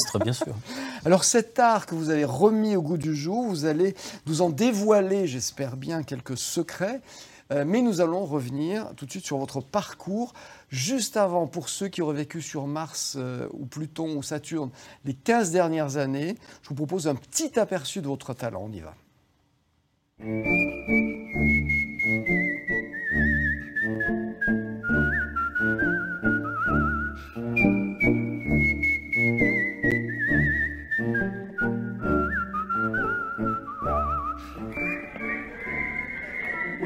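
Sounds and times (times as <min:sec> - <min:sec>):
laughter: 0:00.0 - 0:00.8
speech: 0:00.1 - 0:19.0, 0:20.2 - 0:22.4
person whistling a melodic tune: 0:20.2 - 0:36.8
rhythmic instrumental backing track: 0:20.2 - 0:36.8.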